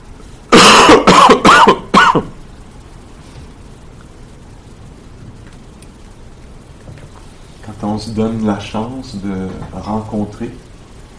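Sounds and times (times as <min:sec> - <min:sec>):
person coughing: 0:00.5 - 0:02.3
speech: 0:08.0 - 0:10.7.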